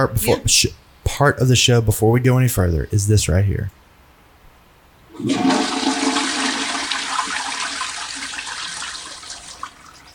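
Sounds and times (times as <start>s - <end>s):
speech: 0.0s - 3.8s, 5.2s - 5.6s
toilet flushing: 5.1s - 10.1s.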